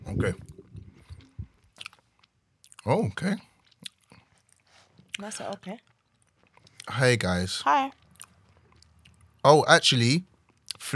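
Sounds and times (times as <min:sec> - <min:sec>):
speech: 0:00.2 - 0:00.5, 0:02.9 - 0:03.5, 0:05.2 - 0:05.9, 0:06.9 - 0:08.0, 0:09.4 - 0:10.9
chewing a small candy: 0:00.6 - 0:07.0, 0:07.9 - 0:09.5.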